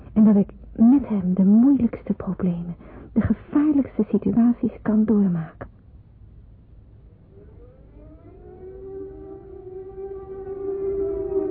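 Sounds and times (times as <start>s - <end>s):
speech: 0.2s - 5.7s
air raid siren wailing during wartime: 7.0s - 11.5s.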